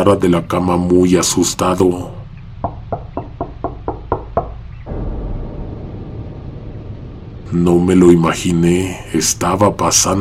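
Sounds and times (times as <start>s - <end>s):
speech: 0.0s - 2.2s, 7.5s - 10.1s
low rumble: 0.0s - 10.1s
knocking on a door: 2.6s - 4.6s.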